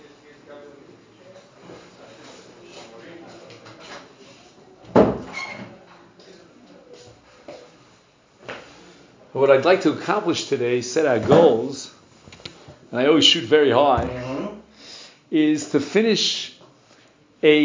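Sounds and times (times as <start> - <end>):
speech: 9.4 - 11.9, 13.0 - 14.3, 15.3 - 16.5, 17.4 - 17.6
door shutting with a solid thud: 13.9 - 14.5.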